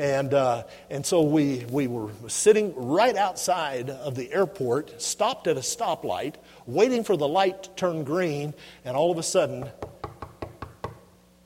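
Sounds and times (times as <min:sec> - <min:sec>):
speech: 0:00.0 - 0:09.9
low hum: 0:00.0 - 0:11.4
knocking on a window: 0:09.6 - 0:11.0.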